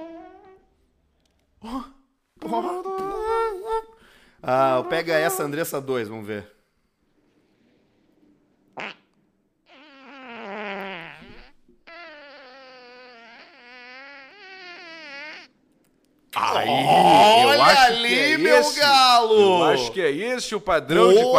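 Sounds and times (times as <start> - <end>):
recorded fart: 0.0 - 0.7, 8.7 - 15.6
speech: 4.5 - 6.6, 19.3 - 21.3
loud excited voices talking over each other: 16.4 - 20.1, 20.8 - 21.3.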